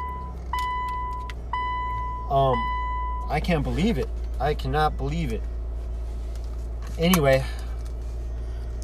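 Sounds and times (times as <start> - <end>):
car engine idling after starting: 0.0 - 8.8
speech: 2.3 - 5.5, 7.0 - 7.6.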